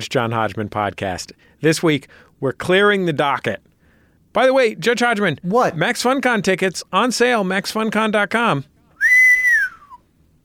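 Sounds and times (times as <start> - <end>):
speech: 0.0 - 3.7, 4.3 - 8.7
loud human whistle of excitement: 9.0 - 10.0.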